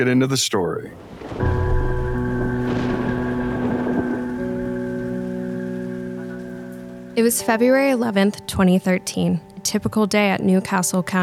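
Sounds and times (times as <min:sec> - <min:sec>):
speech: 0:00.0 - 0:01.6, 0:07.2 - 0:11.2
steady rain hissing: 0:00.5 - 0:08.8
sustained low droning tones: 0:01.4 - 0:08.3.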